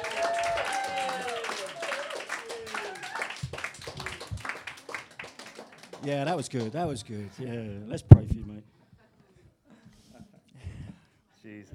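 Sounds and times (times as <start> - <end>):
people whooping: 0.0 - 4.6
audience applauding: 0.0 - 7.2
speech: 6.0 - 8.5.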